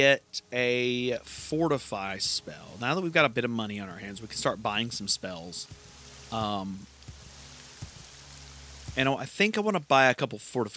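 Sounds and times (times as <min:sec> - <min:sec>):
speech: 0:00.0 - 0:06.9, 0:09.0 - 0:10.7
rain falling in a video game: 0:00.0 - 0:10.7
faint low thuds: 0:04.2 - 0:08.1.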